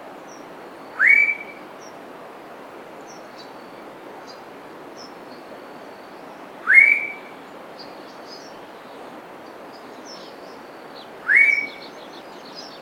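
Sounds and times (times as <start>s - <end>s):
black pitohui rising whistled notes: 1.0s - 1.6s, 6.6s - 7.4s, 11.2s - 11.9s.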